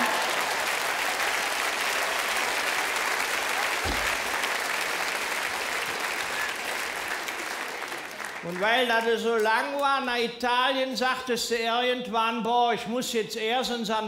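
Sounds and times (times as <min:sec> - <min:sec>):
audience clapping: 0:00.0 - 0:10.1
brief low thump: 0:03.8 - 0:04.3
speech: 0:08.5 - 0:14.0.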